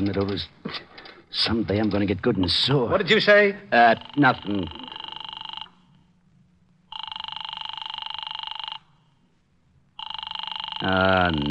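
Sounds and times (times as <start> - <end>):
speech: 0.0 - 4.8, 10.9 - 11.4
faint hum: 0.0 - 11.4
telephone call to an office ringing through a receiver: 3.8 - 6.1, 6.9 - 9.2, 10.0 - 11.4.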